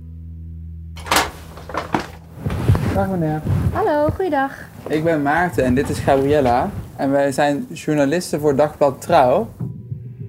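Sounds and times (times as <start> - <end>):
front door latch and handle clicking: 1.0 - 2.3
speech: 3.0 - 9.7.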